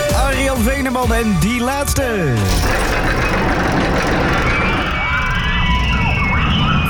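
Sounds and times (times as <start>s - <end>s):
speech: 0.6s - 4.3s
roller coaster racing past at an amusement park in Appelscha: 2.5s - 6.8s.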